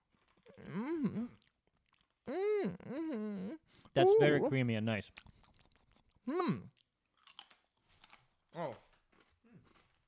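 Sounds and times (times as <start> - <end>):
person biting and chewing a pretzel: 0.0 - 2.3, 5.2 - 10.0
speech: 0.6 - 1.4, 2.6 - 5.3, 6.3 - 6.8, 8.6 - 8.8.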